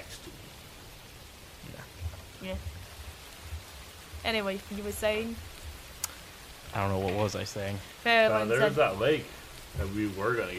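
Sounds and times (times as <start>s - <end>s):
heavy rain: 0.0s - 10.5s
low thumps: 1.5s - 7.7s, 8.8s - 10.5s
speech: 2.4s - 2.8s, 4.2s - 5.5s, 6.8s - 10.5s.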